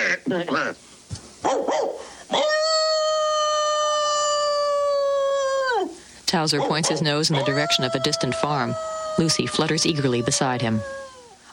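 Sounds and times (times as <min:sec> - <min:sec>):
speech: 0:00.3 - 0:02.0, 0:06.3 - 0:11.0
dog barking and yipping: 0:01.4 - 0:02.4, 0:06.5 - 0:10.8
dog howling: 0:01.4 - 0:06.0, 0:06.6 - 0:11.4.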